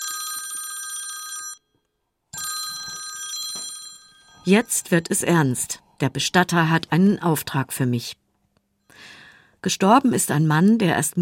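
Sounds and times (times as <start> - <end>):
telephone bell ringing: 0.0 - 4.9
speech: 4.5 - 8.2, 8.9 - 11.2.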